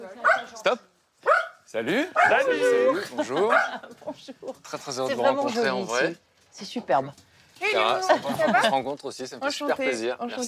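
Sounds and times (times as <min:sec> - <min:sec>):
dog giving a short high bark: 0:00.2 - 0:00.6, 0:01.2 - 0:02.5, 0:03.5 - 0:03.8, 0:08.5 - 0:08.8
speech: 0:01.7 - 0:10.4
people speaking brightly in greeting: 0:01.8 - 0:06.2, 0:07.6 - 0:10.4
laughter: 0:02.0 - 0:05.4, 0:07.9 - 0:08.9.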